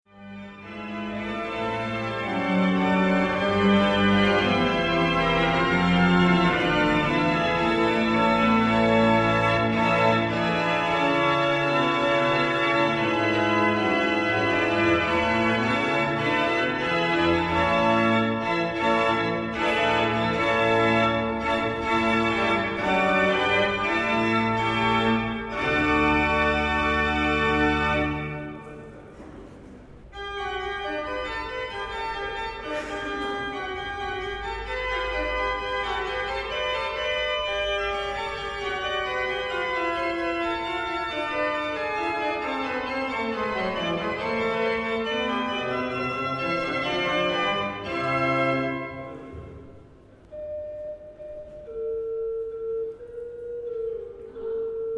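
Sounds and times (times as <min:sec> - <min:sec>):
pipe organ: 0:00.1 - 0:29.5, 0:30.1 - 0:54.9.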